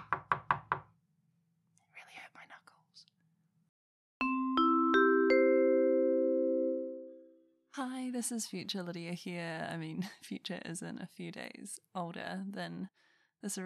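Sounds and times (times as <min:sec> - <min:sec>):
knocking on a wall: 0:00.0 - 0:00.9
soft whispering: 0:01.8 - 0:03.1
ringing sustained musical notes: 0:04.2 - 0:07.2
speech: 0:08.2 - 0:13.6.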